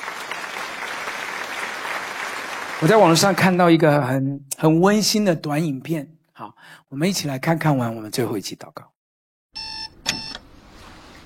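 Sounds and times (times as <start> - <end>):
congregation clapping during a church worship service: 0.0 - 3.6
speech: 2.8 - 9.7.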